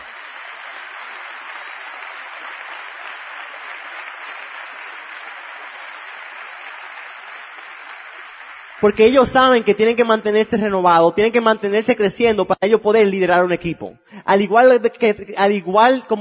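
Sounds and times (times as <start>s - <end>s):
sustained applause from a sizable audience: 0.0s - 9.3s
speech: 8.8s - 16.1s.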